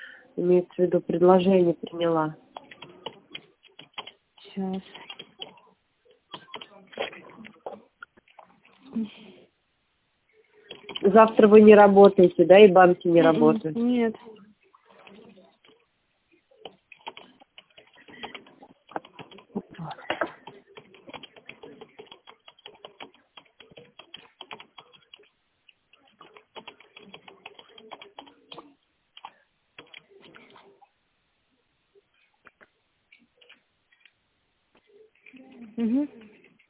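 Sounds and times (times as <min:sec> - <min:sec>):
speech: 0:00.4 - 0:02.4, 0:04.6 - 0:05.0, 0:09.0 - 0:09.2, 0:11.0 - 0:14.4
typing on a keyboard: 0:02.6 - 0:05.6, 0:06.3 - 0:06.8, 0:10.6 - 0:11.2, 0:16.6 - 0:25.3, 0:25.9 - 0:30.6.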